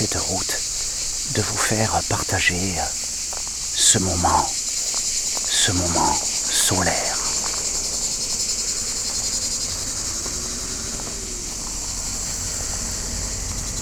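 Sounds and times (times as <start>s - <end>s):
cicadas buzzing in the garrigue of the Hérault at a roadside in strong sun: 0.0s - 13.8s
speech: 1.4s - 3.0s, 3.9s - 4.6s, 5.6s - 7.1s
faint low rumble: 6.1s - 13.8s.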